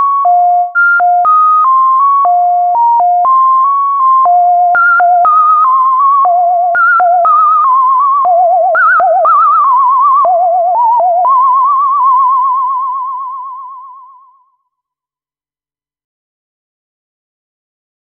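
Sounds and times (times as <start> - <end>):
resonant synth oscillator: 0.2 - 14.4.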